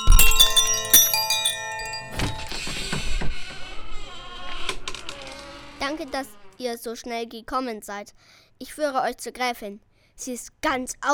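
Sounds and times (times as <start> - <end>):
doorbell chiming with bright ringing tones: 0.0 - 2.8
speech: 5.9 - 11.1.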